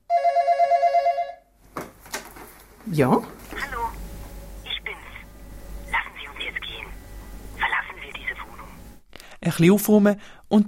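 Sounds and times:
telephone bell ringing: 0.1 - 1.5
faint rustling and shuffling: 1.6 - 4.4
speech: 2.9 - 3.4, 9.5 - 10.6.

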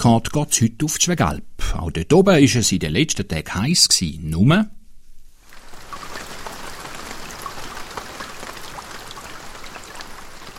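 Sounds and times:
speech: 0.0 - 4.8
steady rain falling: 5.4 - 10.5.

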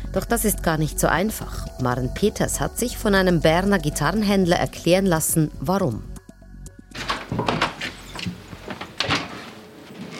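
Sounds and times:
speech: 0.2 - 6.1
door to a guitar room at a guitar dealer's shop being unlocked: 6.9 - 10.1.

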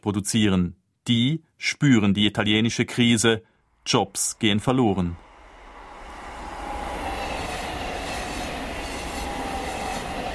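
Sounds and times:
speech: 0.0 - 5.2
faint metallic whine of a passing train: 3.5 - 10.3
train rolling past on railway tracks: 4.4 - 10.3.

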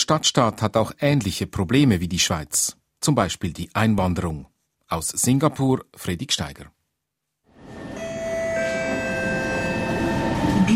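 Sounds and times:
speech: 0.1 - 6.8
brief metallic squeals of subway train: 7.6 - 10.7
subway train running with low rumble and whining hum: 7.6 - 10.7.

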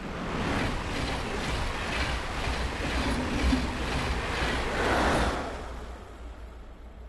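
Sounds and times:
train moving at constant high speed: 0.0 - 7.0.

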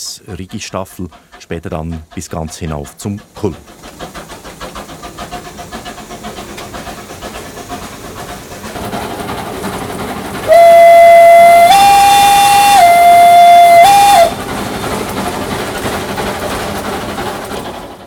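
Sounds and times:
steam cog railway locomotive chugging in Switzerland: 0.0 - 18.0
speech: 0.2 - 3.8
steam locomotive whistle on the Rigi cog railway in Switzerland: 10.4 - 14.4.

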